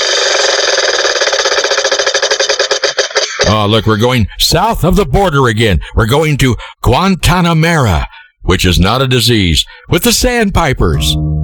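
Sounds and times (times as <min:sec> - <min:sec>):
spinning prize wheel ticking: 0:00.0 - 0:03.8
speech: 0:03.5 - 0:11.4.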